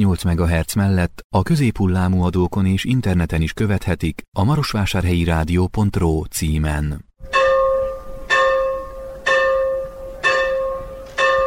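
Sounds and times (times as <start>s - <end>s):
speech: 0.0s - 7.4s
church bell tolling at a former village: 7.2s - 11.4s.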